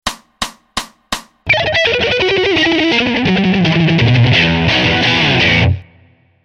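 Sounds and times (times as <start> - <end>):
fast arpeggios with chromatic embellishment: 1.5 - 5.8.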